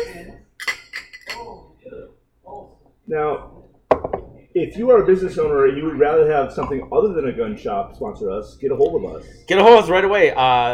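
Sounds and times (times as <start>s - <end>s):
glasses clinking together in a toast: 0.0s - 1.6s, 6.5s - 7.0s
speech: 3.1s - 3.6s, 4.6s - 10.7s.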